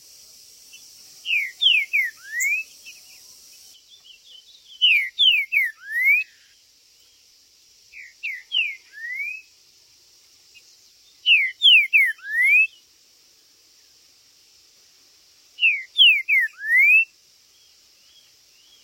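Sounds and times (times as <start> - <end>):
faint chirps: 0.0 - 18.8
steady hiss: 0.0 - 18.8
green-winged saltator song: 0.6 - 7.2, 7.9 - 9.6, 10.5 - 12.8, 15.6 - 18.8.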